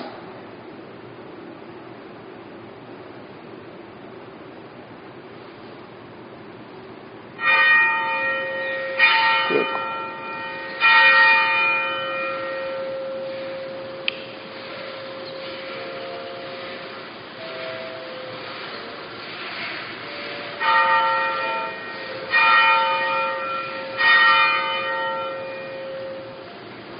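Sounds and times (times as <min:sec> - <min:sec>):
church bells ringing: 0:07.4 - 0:26.8.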